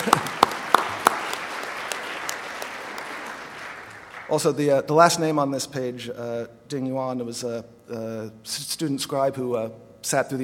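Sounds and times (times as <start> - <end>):
applause from a small audience thanking meeting participants: 0.0 - 4.6
speech: 4.3 - 10.4.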